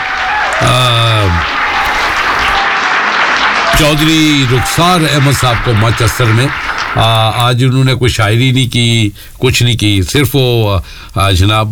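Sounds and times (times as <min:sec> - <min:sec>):
audience applause for a guest on a radio show: 0:00.0 - 0:07.4
speech: 0:00.6 - 0:01.5, 0:03.8 - 0:11.6.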